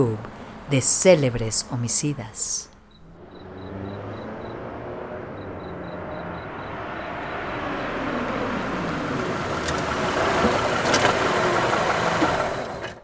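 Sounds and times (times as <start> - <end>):
speech: 0.0 - 2.7
car engine idling: 2.9 - 13.0.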